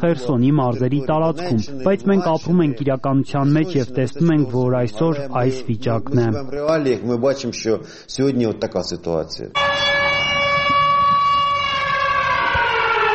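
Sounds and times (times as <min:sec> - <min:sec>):
speech: 0:00.0 - 0:09.6
air raid siren wailing over a railway station: 0:09.6 - 0:13.1.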